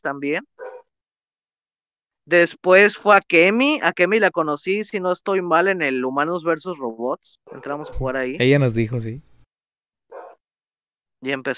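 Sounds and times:
speech: 0:00.0 - 0:00.6, 0:02.3 - 0:09.3, 0:11.2 - 0:11.5
deep dog bark: 0:00.6 - 0:00.9, 0:07.5 - 0:08.4, 0:10.1 - 0:10.4.

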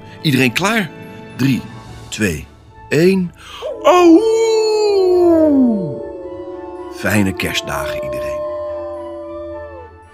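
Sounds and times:
speech: 0:00.2 - 0:04.4, 0:07.0 - 0:08.4
dogs howling a song together: 0:03.6 - 0:10.1.

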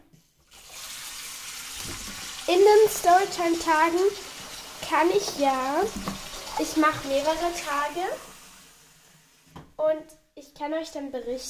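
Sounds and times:
tap water running: 0:00.4 - 0:09.8
speech: 0:01.9 - 0:08.3, 0:09.8 - 0:11.4.

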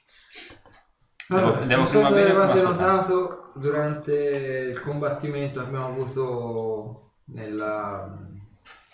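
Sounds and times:
speech: 0:01.3 - 0:08.4
brandy being poured into glasses: 0:01.8 - 0:04.1.

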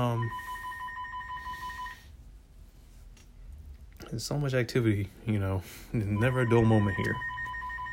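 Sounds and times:
speech: 0:00.0 - 0:00.5, 0:04.1 - 0:07.4
telephone ringing with electronic trilling tone: 0:00.0 - 0:02.0, 0:06.2 - 0:07.9.

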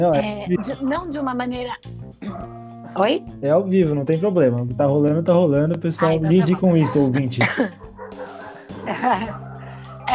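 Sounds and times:
speech: 0:00.0 - 0:07.9, 0:08.9 - 0:09.4
several dogs barking and yipping: 0:00.4 - 0:01.4, 0:06.0 - 0:10.1
laughter: 0:06.1 - 0:09.8.

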